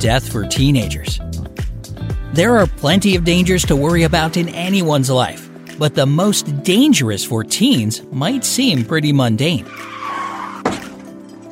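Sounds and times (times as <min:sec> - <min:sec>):
speech: 0:00.0 - 0:01.3, 0:02.3 - 0:10.0
car tires squealing in a skid: 0:09.6 - 0:11.1
car crash impact: 0:09.8 - 0:11.2.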